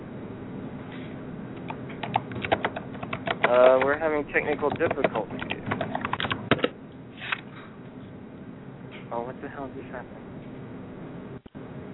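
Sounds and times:
steady low hum: 0.0s - 11.9s
typing on a computer keyboard: 1.6s - 6.7s
speech: 3.5s - 5.8s, 9.2s - 10.3s.

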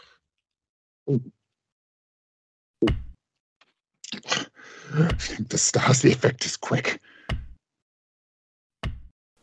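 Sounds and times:
speech: 1.1s - 1.4s, 5.0s - 7.1s
door being pounded hard to force it open: 8.8s - 9.1s.

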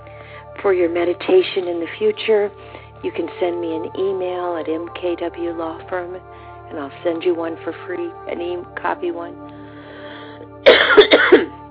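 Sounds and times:
speech: 0.6s - 9.5s
rough raspy cough: 10.6s - 11.5s.

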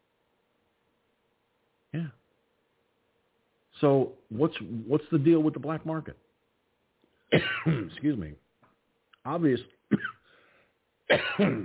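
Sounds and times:
speech: 3.8s - 6.3s, 7.6s - 8.4s, 9.2s - 10.1s, 11.1s - 11.6s
throat clearing and coughing from someone with a tickle in the throat: 7.3s - 8.0s, 9.9s - 10.3s, 11.1s - 11.6s.

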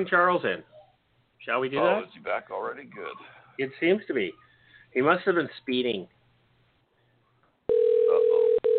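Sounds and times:
speech: 0.0s - 0.7s, 1.4s - 6.2s
telephone line ringing while a call connects: 7.7s - 8.7s.

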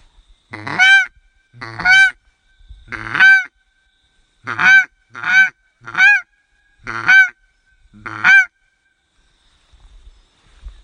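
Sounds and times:
DJ paradise duck call blown, as used in New Zealand: 0.5s - 2.2s, 2.9s - 3.5s, 4.4s - 7.4s, 8.0s - 8.5s.

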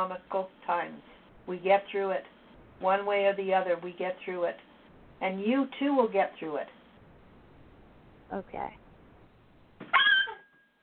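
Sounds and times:
speech: 0.0s - 6.8s, 8.3s - 8.8s
puppy whining: 9.9s - 10.7s.

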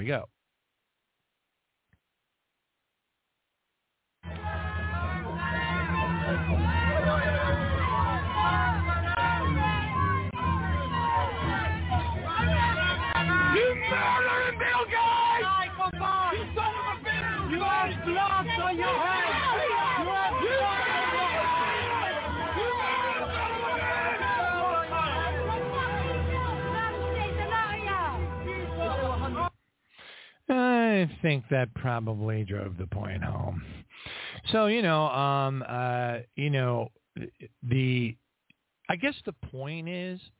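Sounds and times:
speech: 0.0s - 0.4s, 30.5s - 33.8s, 34.4s - 38.2s, 38.9s - 40.3s
dense street crowd shouting and jeering around a car in the United Kingdom: 4.2s - 29.5s.

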